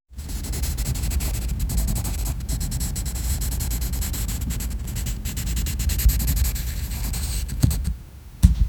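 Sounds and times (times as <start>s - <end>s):
pencil drawing: 0.2s - 7.9s.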